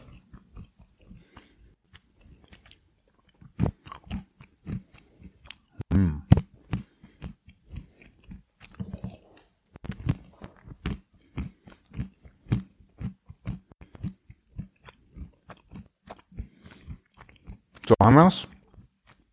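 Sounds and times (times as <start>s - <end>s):
crunchy chewing of a cashew nut: 0.0s - 17.9s, 18.5s - 19.3s
short hum from the person eating: 5.8s - 6.4s
speech: 18.2s - 18.5s.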